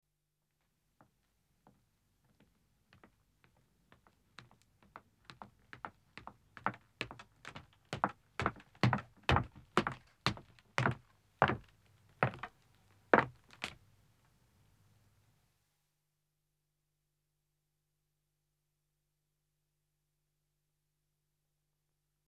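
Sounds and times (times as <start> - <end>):
one man's footsteps descending wooden stairs: 6.6 - 12.5.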